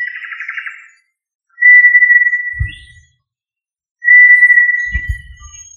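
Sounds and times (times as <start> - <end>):
tinamou of family Tinamidae whistling: 1.6 - 3.1, 4.1 - 5.7
soft low thumps: 2.5 - 3.1, 4.9 - 5.6.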